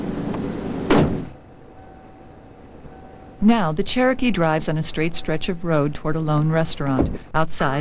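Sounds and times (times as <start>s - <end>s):
low outdoor ambience: 0.0s - 7.7s
car hood slamming shut: 0.9s - 1.4s
speech: 3.4s - 7.7s.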